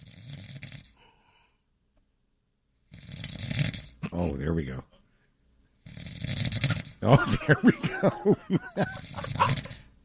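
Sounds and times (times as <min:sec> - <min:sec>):
man snoring loudly with rough rasping snores: 0:00.0 - 0:01.0, 0:02.9 - 0:04.0, 0:05.8 - 0:07.1, 0:08.7 - 0:09.9
speech: 0:04.2 - 0:04.9, 0:07.0 - 0:09.8
laughter: 0:07.0 - 0:09.7.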